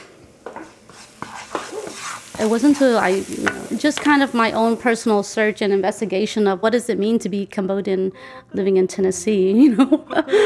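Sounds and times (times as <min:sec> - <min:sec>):
utensil scraping and clinking against metal pan: 0:00.0 - 0:04.1
garlic and vegetables stir-frying in a pan: 0:00.0 - 0:07.0
speech: 0:02.4 - 0:10.4.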